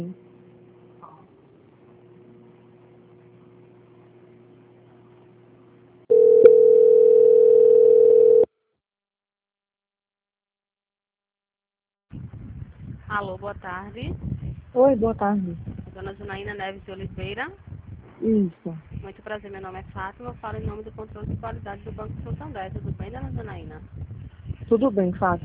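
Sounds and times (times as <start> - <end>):
faint low telephone line hum: 0.0 - 8.5, 12.2 - 25.4
steady single-pitch telephone line tone while a bank call is transferred: 6.1 - 8.5
speech: 13.2 - 24.0, 24.7 - 25.4.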